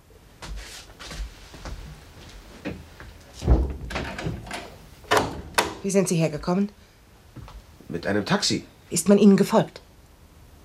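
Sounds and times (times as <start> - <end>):
handling knocks: 2.6 - 5.8
door pushed shut with a solid thunk: 3.4 - 5.9
latch or lock rattling and clicking: 3.5 - 5.8
speech: 5.8 - 6.8, 7.9 - 9.9.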